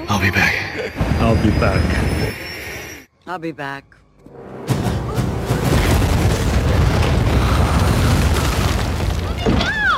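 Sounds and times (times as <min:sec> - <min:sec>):
speech: 0:00.1 - 0:02.5, 0:03.3 - 0:04.7
crackling debris: 0:05.2 - 0:09.9
loud explosion: 0:05.6 - 0:09.8.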